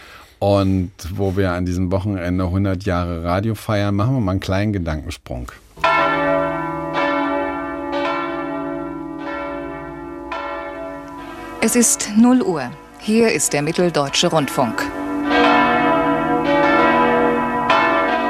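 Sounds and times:
speech: 0.4 - 5.6, 11.6 - 15.0
large church bells of St. Nicholas Church in Leipzig ringing: 5.8 - 18.2.

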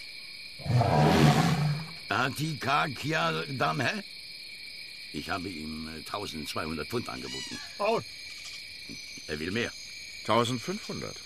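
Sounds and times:
elephant trumpeting: 0.6 - 1.9
speech: 2.2 - 4.2, 5.1 - 8.3, 8.9 - 11.2.

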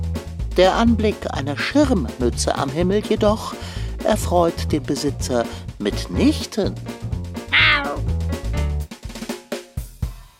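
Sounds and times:
speech: 0.6 - 7.1
tomcat meowing: 7.5 - 8.1.

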